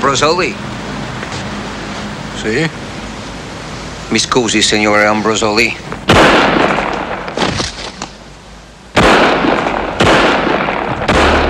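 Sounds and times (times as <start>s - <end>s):
speech: 0.0s - 0.7s, 2.4s - 2.8s, 4.1s - 5.8s
.357 Magnum revolver gunshots: 6.0s - 8.0s, 8.9s - 11.4s.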